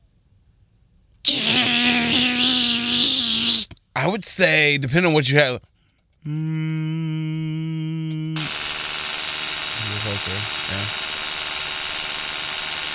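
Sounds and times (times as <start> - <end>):
loud continuous hissing whirr: 1.3 - 3.7, 8.4 - 12.9
short wavering vocal sounds: 1.3 - 3.7, 6.2 - 8.5
voice imitating an electric toothbrush buzzing: 1.3 - 3.7, 6.3 - 11.2
speech: 4.0 - 7.3.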